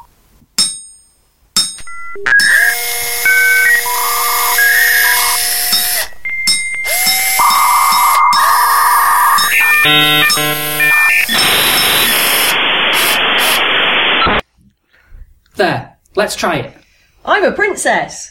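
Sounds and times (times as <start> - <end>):
robotic droid whistles, electronic bleeps and synthetic tones: 2.0 - 13.6
speech: 2.2 - 2.6, 9.9 - 11.6, 15.6 - 18.2
static hiss: 2.6 - 14.4.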